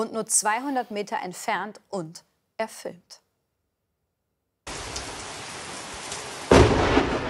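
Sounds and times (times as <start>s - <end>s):
speech: 0.0s - 3.2s
steady rain: 4.7s - 7.2s
thunder crack from a close lightning strike: 4.7s - 7.2s.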